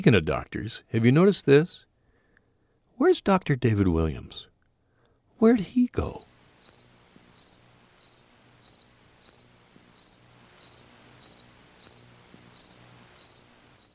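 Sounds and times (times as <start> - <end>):
speech: 0.0 - 1.9, 3.0 - 4.5, 5.4 - 6.3
crickets chirping: 6.1 - 13.9.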